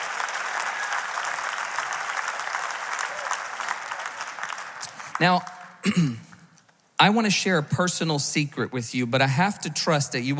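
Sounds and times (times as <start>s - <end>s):
large audience applauding: 0.0s - 5.9s
speech: 5.2s - 6.3s, 7.0s - 10.3s.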